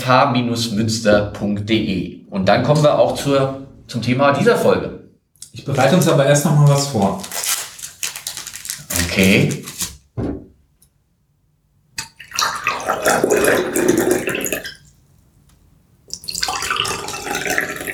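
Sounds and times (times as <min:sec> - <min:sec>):
speech: 0:00.0 - 0:07.4, 0:09.2 - 0:10.3
knock: 0:10.2 - 0:10.5
water pouring: 0:12.0 - 0:15.0, 0:16.1 - 0:17.9.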